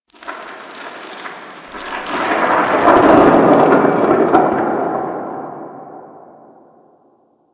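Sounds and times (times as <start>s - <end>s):
distant rock fall from a cliff: 1.7s - 6.7s.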